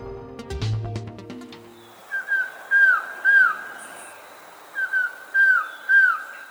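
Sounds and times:
collared trogon whistling call: 1.7s - 6.4s.

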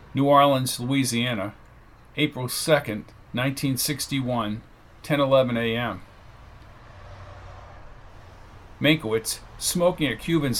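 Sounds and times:
highway traffic roar of cars and trucks: 0.0s - 10.5s
speech: 0.2s - 1.6s, 2.2s - 6.1s, 8.8s - 10.5s
cars and trucks rushing past on highway: 4.1s - 10.5s.

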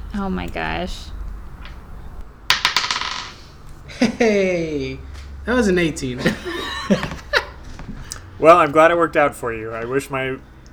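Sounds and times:
speech: 0.1s - 1.2s, 4.1s - 7.2s, 8.4s - 10.5s
dice rolling on a hard table: 2.5s - 3.9s
laughter: 3.8s - 9.0s.

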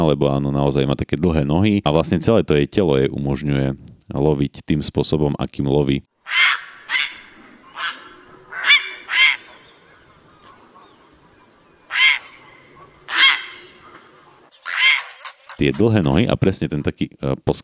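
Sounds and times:
speech: 0.1s - 6.5s, 15.6s - 17.6s
grey heron croaking calls: 6.2s - 16.1s.

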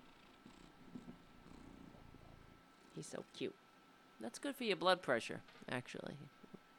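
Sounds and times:
cat purring: 0.0s - 3.6s
speech: 3.0s - 3.6s, 4.2s - 6.4s.

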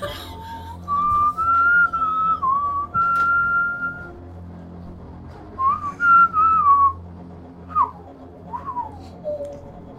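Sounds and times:
whistled melody in a film: 0.8s - 4.2s, 5.6s - 9.9s.

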